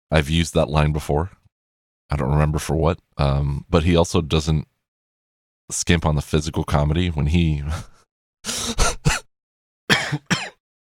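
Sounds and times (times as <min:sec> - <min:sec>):
speech: 0:00.1 - 0:01.4, 0:02.1 - 0:04.7, 0:05.7 - 0:08.0
person coughing out of a laugh: 0:08.5 - 0:09.3, 0:09.9 - 0:10.6.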